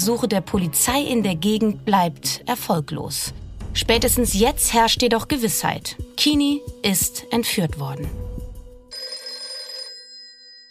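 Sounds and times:
speech: 0.0s - 8.3s
low rumble: 3.3s - 5.4s
telephone bell ringing: 8.9s - 10.6s.

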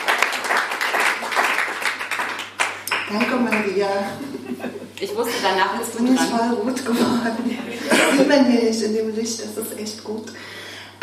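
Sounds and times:
audience applause: 0.0s - 3.7s
speech: 3.1s - 11.0s
laughter: 4.1s - 5.4s, 6.9s - 8.3s.

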